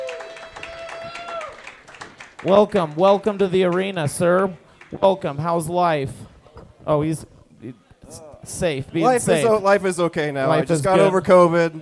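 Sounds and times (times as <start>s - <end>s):
audience at a joke competition applauding: 0.0s - 5.4s
speech: 2.4s - 11.8s.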